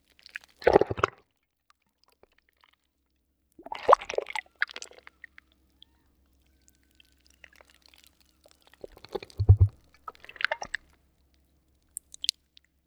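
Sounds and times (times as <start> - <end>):
sea water glooping: 3.6 - 11.0.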